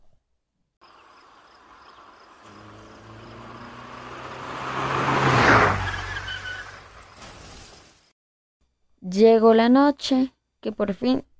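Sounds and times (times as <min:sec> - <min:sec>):
car driving past in front of a park: 0:01.1 - 0:07.2
speech: 0:09.1 - 0:11.3.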